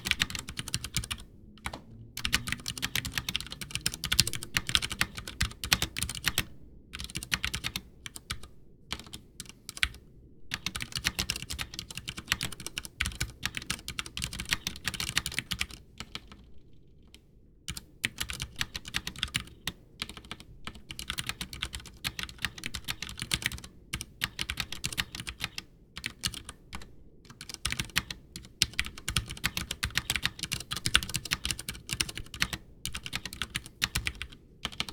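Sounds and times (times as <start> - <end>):
soft steady low rumble: 0.0 - 5.6
typing on a white Ducky One 2 keyboard with Cherry MX Brown switches: 0.0 - 16.4, 17.7 - 34.9.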